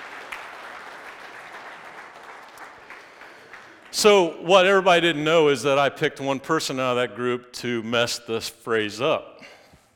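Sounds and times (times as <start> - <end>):
audience applause: 0.0 - 4.3
speech: 3.9 - 9.6.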